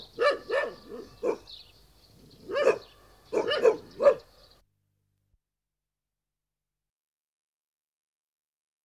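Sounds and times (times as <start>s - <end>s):
dog barking: 0.0s - 1.5s, 2.4s - 4.3s.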